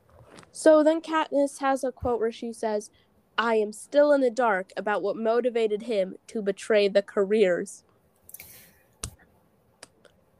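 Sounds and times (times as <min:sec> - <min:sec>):
speech: 0:00.6 - 0:07.9
hand slapping a face in a face palm: 0:09.0 - 0:09.2.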